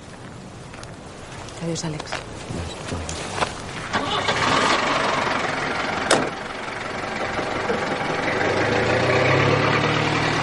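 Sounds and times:
speech: 1.6 - 3.4
car driving away along a road: 3.9 - 10.4.

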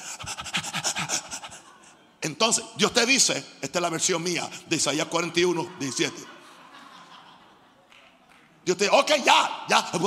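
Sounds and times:
person imitating panting of a thirsty dog: 0.0 - 1.7
laughter: 0.2 - 2.2, 4.6 - 8.2
speech: 2.2 - 6.4, 8.7 - 10.0.

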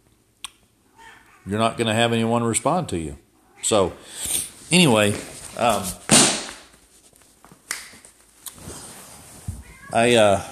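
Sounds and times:
cat meowing: 0.9 - 1.5, 9.6 - 10.5
speech: 1.4 - 6.0, 9.9 - 10.5.

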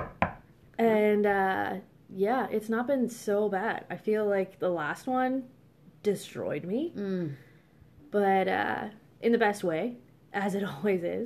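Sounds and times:
single sharp knock on a wooden surface: 0.0 - 0.5
speech: 1.2 - 7.5, 8.1 - 11.2.

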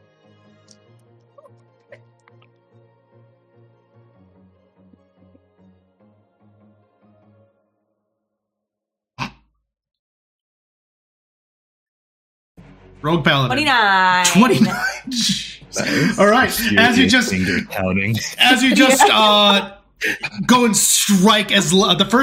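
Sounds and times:
soft rhythmic music: 0.0 - 7.5, 12.6 - 19.7
speech: 13.0 - 22.2
laughter: 14.2 - 22.2.

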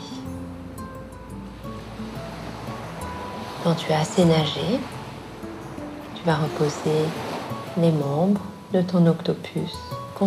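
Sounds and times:
sea waves washing on the shore: 1.4 - 9.0
speech: 3.6 - 5.0, 6.2 - 10.2.

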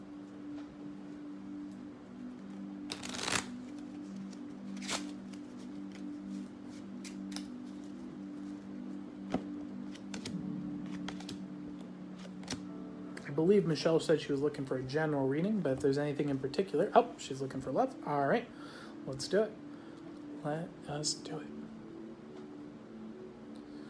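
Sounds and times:
steady low electrical hum: 0.0 - 23.8
card shuffling with papery riffles and snaps: 2.4 - 8.5, 9.2 - 11.4, 12.1 - 12.7
speech: 13.4 - 19.6, 20.4 - 21.6.

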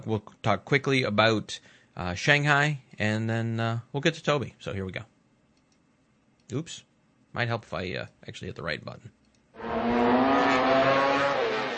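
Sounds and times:
speech: 0.0 - 5.1, 6.5 - 9.2
240-horsepower road racing motorcycle engine revving hard: 9.6 - 11.7.

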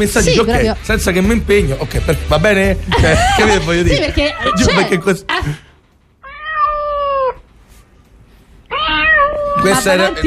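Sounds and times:
speech: 0.0 - 5.6, 9.6 - 10.2
laughter: 2.8 - 5.7
female cat meowing: 6.2 - 7.5, 8.7 - 10.2.

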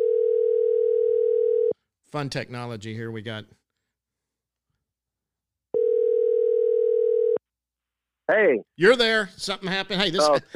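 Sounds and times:
steady telephone dial tone: 0.0 - 1.7, 5.8 - 7.4
speech: 2.1 - 3.6, 8.3 - 10.5.

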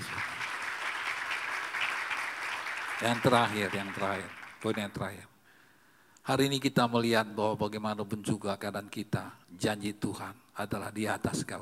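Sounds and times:
crowd applauding for God: 0.0 - 5.0
speech: 3.0 - 5.3, 6.2 - 11.6.

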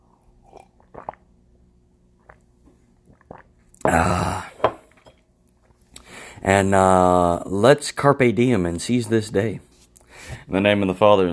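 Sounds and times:
slurping sip of a hot drink: 0.4 - 1.2
speech: 6.5 - 9.7, 10.5 - 11.3.

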